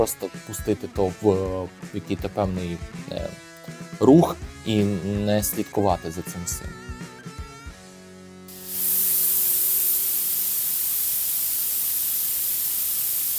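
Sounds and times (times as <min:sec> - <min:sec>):
speech: 0:00.0 - 0:06.9
compressed air, nitrogen and carbon dioxide gas feed hissing in a brewery: 0:08.5 - 0:13.3.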